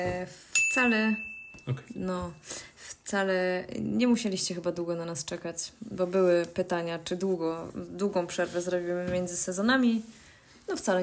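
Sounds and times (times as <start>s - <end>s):
speech: 0.0s - 11.0s
short subtle bell signature chime: 0.5s - 2.5s.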